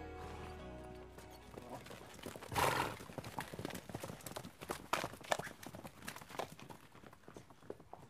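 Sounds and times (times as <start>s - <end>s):
horse whinnying: 0.2s - 3.5s
horse-drawn carriage hooves clip-clopping: 0.2s - 8.0s.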